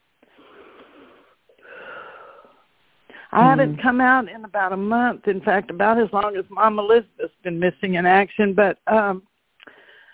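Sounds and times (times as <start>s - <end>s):
person taking one deep breath: 0.2s - 3.4s, 9.6s - 10.1s
speech: 3.3s - 9.3s.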